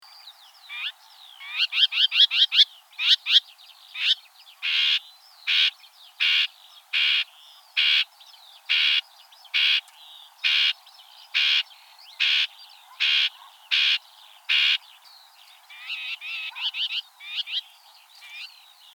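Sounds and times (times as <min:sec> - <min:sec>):
stonechat alarm call: 0:00.7 - 0:18.7.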